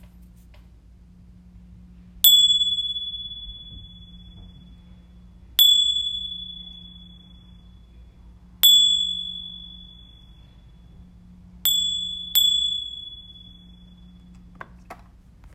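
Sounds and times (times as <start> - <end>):
tingsha chime: 2.2 - 14.5.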